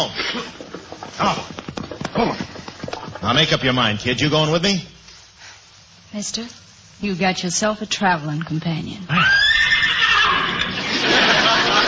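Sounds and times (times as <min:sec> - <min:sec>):
speech: 0:00.0 - 0:02.6, 0:03.2 - 0:04.9, 0:06.1 - 0:09.8
person imitating a horse's whinny: 0:09.1 - 0:10.7
laughter: 0:10.7 - 0:11.8.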